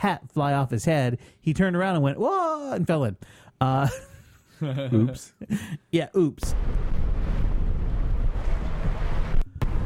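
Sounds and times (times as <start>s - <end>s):
speech: 0.0s - 7.0s
wind buffeting a microphone outdoors on a boat: 6.5s - 9.8s.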